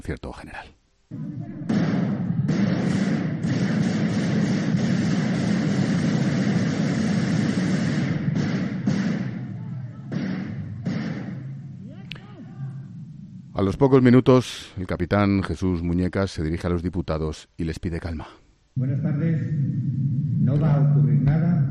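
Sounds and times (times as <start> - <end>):
speech: 0.0 - 1.4, 13.6 - 21.6
gunshots fired at parliament ceiling: 1.2 - 12.5.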